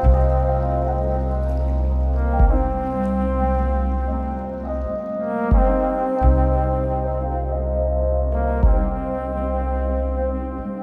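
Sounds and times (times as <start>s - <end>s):
pads: 0.0s - 10.8s.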